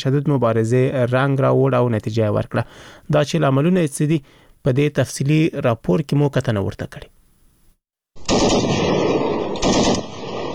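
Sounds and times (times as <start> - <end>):
speech: 0.0 - 7.1
automatic gunfire exchanged between Afghan and Pakistani border soldiers along the Durand Line: 8.2 - 10.5.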